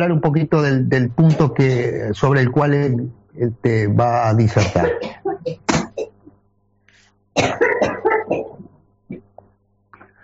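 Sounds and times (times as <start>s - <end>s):
speech: 0.0s - 5.6s, 7.4s - 7.6s
woman coughing in harsh hacking bursts: 4.7s - 6.2s, 7.4s - 8.6s.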